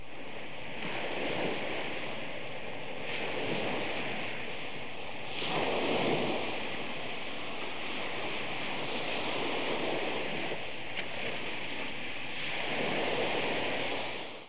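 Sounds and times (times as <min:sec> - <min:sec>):
ocean: 0:00.0 - 0:14.4.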